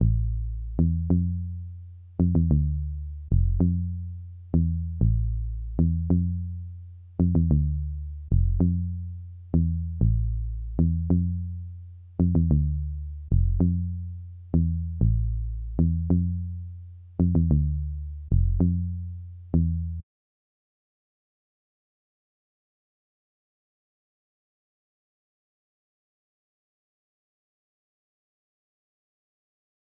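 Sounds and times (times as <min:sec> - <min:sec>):
bass melody loop in A minor at 96 BPM: 0:00.0 - 0:20.0.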